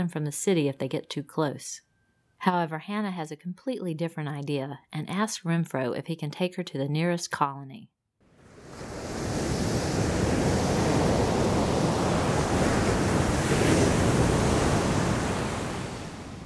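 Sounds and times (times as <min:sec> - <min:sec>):
speech: 0:00.0 - 0:08.0
ocean waves on the open sea heard from a small boat: 0:08.3 - 0:16.4
wind buffeting: 0:08.4 - 0:16.4.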